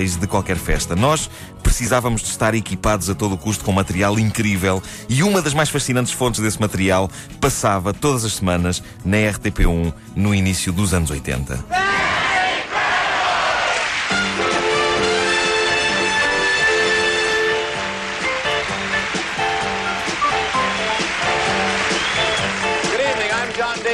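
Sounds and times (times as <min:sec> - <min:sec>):
bright theme-style music: 0:00.0 - 0:11.8, 0:14.0 - 0:23.9
speech: 0:00.0 - 0:12.2
large studio audience shouting a phrase together: 0:11.7 - 0:14.0.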